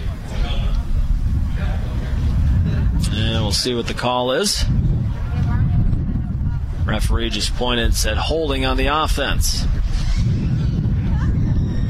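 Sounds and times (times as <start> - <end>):
strong wind buffeting an outdoor microphone with a low rumble: 0.0 - 11.8
speech: 3.5 - 4.8, 6.9 - 9.8.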